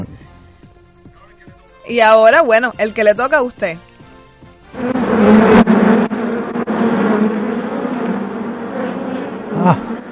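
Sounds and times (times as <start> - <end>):
speech: 1.9 - 3.9, 9.6 - 9.8
dense swarm of bees or wasps buzzing: 4.6 - 10.1.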